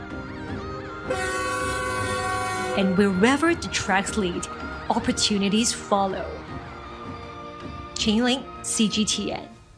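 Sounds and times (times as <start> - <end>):
train horn with wavering tone: 1.0 - 3.2
train passing on the Qinghai-Xizang Railway: 1.0 - 7.9
speech: 1.1 - 1.3, 2.8 - 6.4, 8.0 - 9.5.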